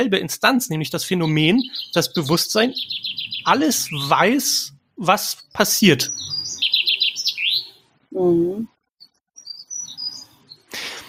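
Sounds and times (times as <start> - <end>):
speech: 0.0 - 6.6, 8.2 - 8.7
birds chirping and tweeting outdoors: 0.0 - 11.0.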